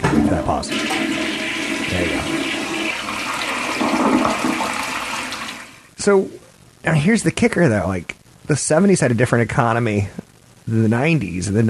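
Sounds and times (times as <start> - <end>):
toilet flushing: 0.0 - 5.9
speech: 0.2 - 1.3, 1.9 - 2.4, 6.0 - 11.6.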